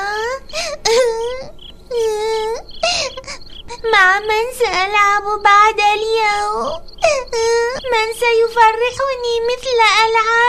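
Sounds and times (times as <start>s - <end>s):
girl crying and wailing: 0.0s - 5.1s, 6.2s - 8.4s
speech: 4.2s - 6.8s, 7.4s - 10.4s.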